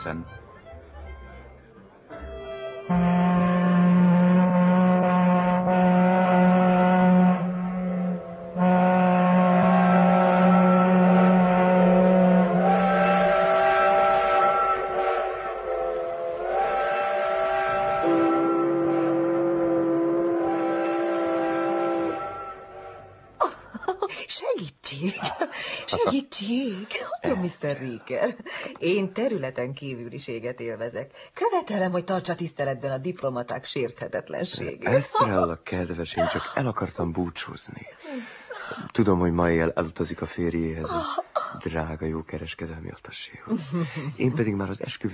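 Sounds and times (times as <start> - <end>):
speech: 0.0 - 0.4, 27.6 - 45.1
ship horns blowing in overlapping sustained blasts: 0.0 - 23.4
laughter: 25.0 - 26.3, 36.2 - 36.7.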